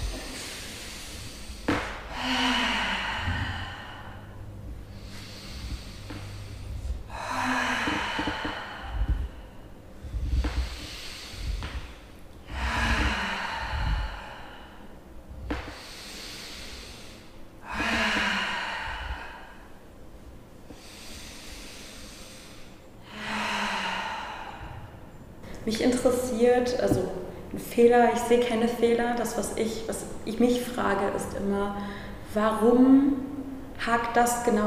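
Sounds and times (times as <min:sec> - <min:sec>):
deep slow breathing exercise: 0:00.0 - 0:25.6
speech: 0:25.7 - 0:27.1, 0:27.8 - 0:34.6.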